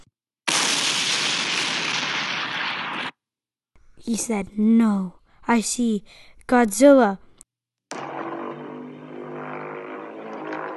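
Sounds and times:
explosion blast sound effect: 0.5 - 3.2
speech: 4.1 - 7.3.

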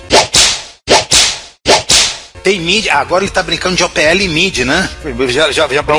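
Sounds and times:
whip cracks: 0.0 - 2.4
speech: 2.4 - 5.9.

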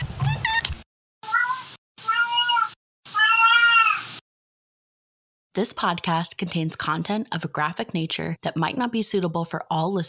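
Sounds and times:
pet cat meowing: 1.2 - 4.1
speech: 5.6 - 10.0.

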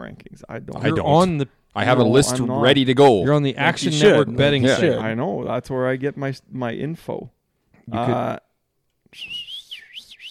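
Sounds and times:
speech: 0.1 - 8.4, 9.1 - 9.5
person whistling a wavering tune: 9.1 - 10.2.

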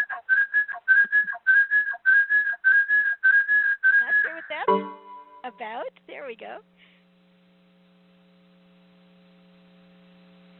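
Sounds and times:
shrill echo feedback whistle on the line: 0.4 - 5.5
speech: 5.5 - 6.8.

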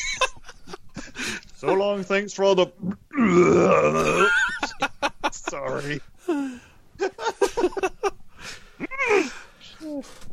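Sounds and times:
laughter: 0.0 - 2.1, 3.9 - 6.4, 7.0 - 9.3
speech: 1.6 - 4.4, 5.5 - 6.2
voice imitating a dolphin burping: 2.8 - 4.3.

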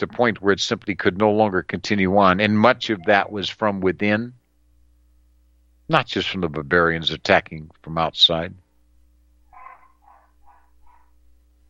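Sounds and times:
speech: 0.0 - 4.4, 5.9 - 8.6
low steady electrical hum: 0.0 - 11.6
dog whining yelps: 9.5 - 11.2.

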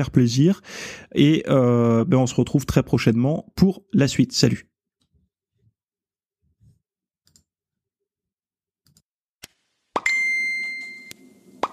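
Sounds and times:
speech: 0.0 - 4.7
bright high ding: 10.0 - 11.7
notification chime: 10.0 - 11.7.

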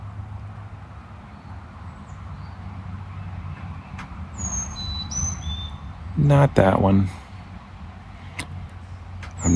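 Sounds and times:
steady low rumble of traffic: 0.0 - 9.5
tufted titmouse calling: 4.4 - 5.8
speech: 6.2 - 7.2.

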